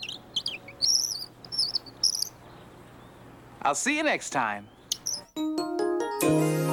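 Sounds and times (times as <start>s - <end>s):
birds chirping and trilling: 0.0s - 5.4s
speech: 3.6s - 4.8s, 6.2s - 6.6s.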